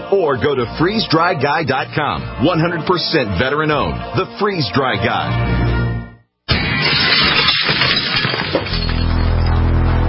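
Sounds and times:
speech: 0.1 - 5.7
glass smashing as a home break-in sound effect: 6.5 - 9.7.

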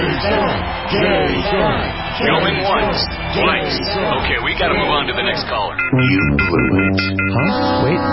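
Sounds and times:
loud dense crowd cheering and chanting a name: 0.0 - 6.8
speech: 0.2 - 8.1.

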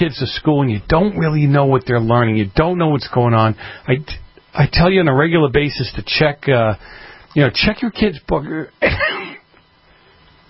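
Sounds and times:
speech: 0.0 - 9.4
radio host coughing on air: 8.8 - 9.5.

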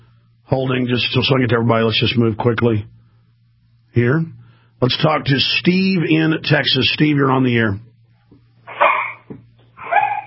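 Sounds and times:
low steady hum: 0.0 - 10.2
speech: 0.5 - 3.0, 4.0 - 7.9
dogs yelping and whining over a telephone line: 8.7 - 10.2.

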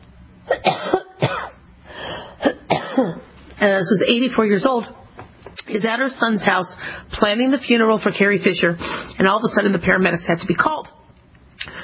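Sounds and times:
harsh coughing: 0.5 - 1.6, 2.2 - 3.3
speech: 3.0 - 5.0, 5.7 - 11.0.

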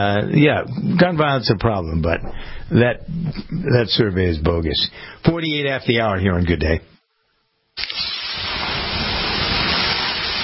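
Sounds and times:
speech: 0.0 - 6.9
water poured on hot sauna rocks sizzling: 7.8 - 10.4.

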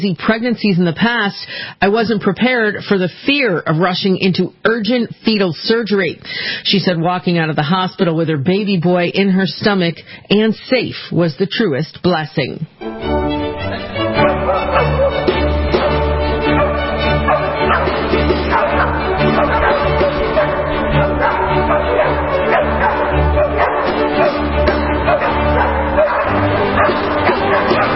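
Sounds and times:
speech: 0.0 - 15.0
chamber orchestra playing: 12.8 - 27.9
three dogs barking, yipping and whimpering: 13.7 - 27.9.

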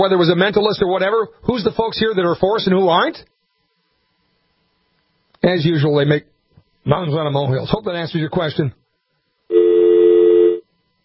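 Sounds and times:
speech: 0.0 - 3.3, 5.4 - 8.8
telephone dial tone: 9.5 - 10.6.

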